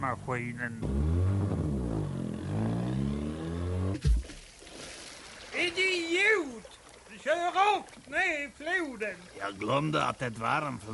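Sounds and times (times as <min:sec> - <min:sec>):
speech: 0:00.0 - 0:01.3, 0:05.6 - 0:10.9
car engine revving hard for a racing start: 0:00.8 - 0:04.0
thump: 0:03.9 - 0:04.4.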